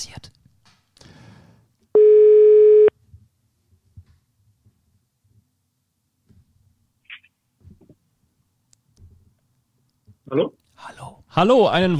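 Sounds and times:
telephone ringback tone: 2.0 - 2.9
speech: 10.3 - 10.6, 11.4 - 11.9.

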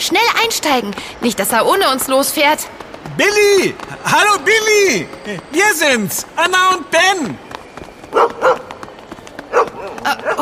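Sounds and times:
speech: 0.0 - 7.4, 8.1 - 8.6
dog barking: 8.1 - 8.7, 9.5 - 10.4.

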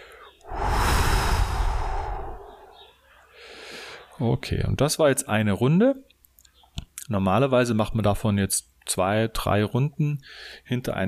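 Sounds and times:
long deep exhale in a breathing exercise: 0.4 - 4.0
speech: 4.2 - 6.1, 7.1 - 11.0.

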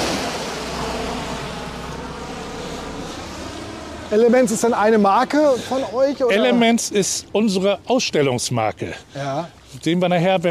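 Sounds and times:
large truck rumbling past with engine drone and road noise: 0.0 - 7.6
speech: 4.1 - 10.4.

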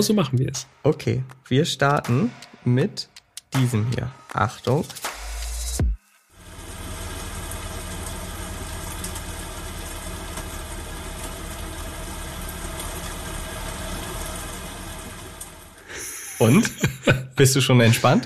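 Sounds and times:
speech: 0.0 - 5.2, 16.4 - 18.2
steady dense rain falling: 6.4 - 17.2
laughter: 15.9 - 18.2.

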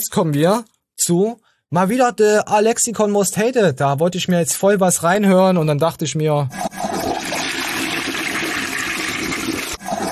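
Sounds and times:
speech: 0.0 - 7.1
toilet flushing: 6.6 - 10.0.

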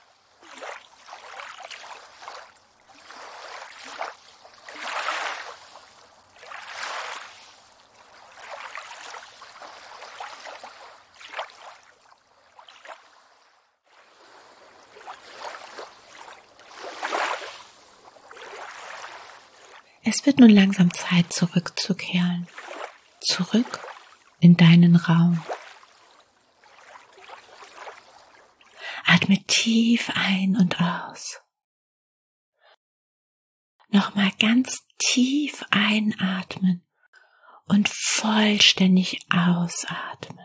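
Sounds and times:
lake water lapping and sloshing gently: 0.0 - 21.4, 22.4 - 24.4, 25.3 - 29.0
speech: 20.1 - 22.6, 23.2 - 23.8, 24.4 - 25.5, 29.2 - 31.4, 34.0 - 36.9, 37.7 - 40.4.

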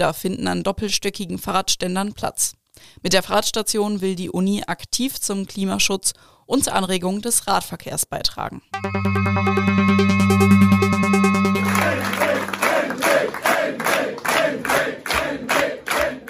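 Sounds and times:
speech: 0.0 - 14.0
crowd clapping rhythmically in unison: 8.8 - 16.2
large crowd cheering at an election party: 11.6 - 16.2.

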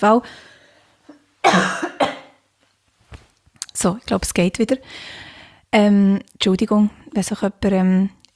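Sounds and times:
speech: 0.0 - 0.5, 1.4 - 1.9, 3.8 - 8.3
person coughing after choking on something swallowed the wrong way: 1.4 - 2.4.

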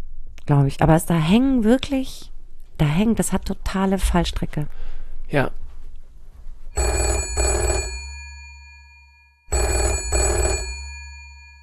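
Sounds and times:
speech: 0.5 - 5.6, 6.8 - 7.5
telephone ringing with an incoming call: 6.8 - 11.6.

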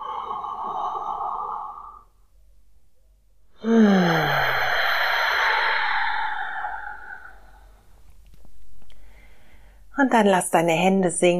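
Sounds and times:
deep breathy exhale during a guided relaxation exercise: 0.0 - 2.3, 3.6 - 8.0, 8.9 - 9.9
speech: 10.1 - 11.3.

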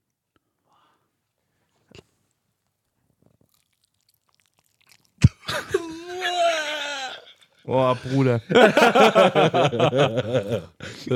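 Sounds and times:
chewing a pastry: 1.7 - 5.4
crunch of biting into a large pastry with lemon syrup: 2.7 - 5.2
moan of enjoyment: 5.2 - 8.2
speech: 7.7 - 11.1
laughter: 7.8 - 11.1.

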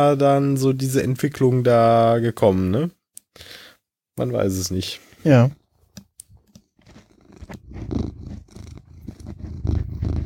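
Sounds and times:
speech: 0.0 - 3.6, 4.2 - 5.6
cat scratching at a microphone pop filter: 6.3 - 10.2
cat purring on a person's lap: 6.9 - 10.2.

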